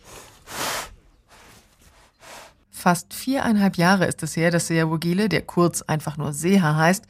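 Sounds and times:
injured rhino bull with facial wound snorting: 0.0s - 2.6s
quieter airy breathing of injured rhino bull: 0.0s - 2.7s
speech: 2.8s - 7.0s.

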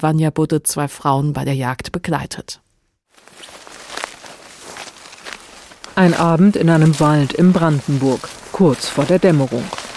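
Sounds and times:
speech: 0.0s - 2.6s, 6.0s - 9.8s
crunching rustling vegetation in a forest in Brandenburg: 3.1s - 9.9s
hunter's footsteps stomping through blackberry brambles and nettles in a Brandenburg forest: 3.1s - 9.9s.

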